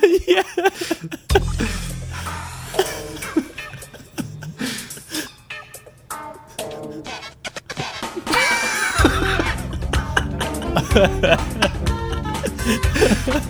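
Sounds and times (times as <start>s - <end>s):
people laughing: 0.0s - 13.4s
cheesy porn-style soundtrack music with thumping bassline: 0.8s - 13.4s
people chattering: 2.8s - 13.4s.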